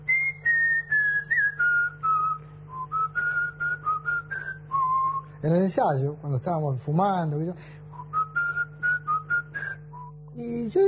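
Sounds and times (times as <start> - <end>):
steady low hum: 0.0 - 10.8
person whistling a short melody: 0.1 - 5.3, 7.9 - 10.2
speech: 5.4 - 7.8, 10.4 - 10.8.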